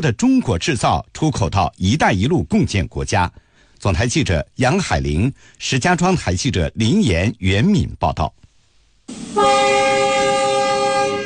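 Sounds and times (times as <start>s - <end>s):
speech: 0.0s - 8.4s, 9.1s - 10.1s
freight train horn blaring: 9.1s - 11.2s.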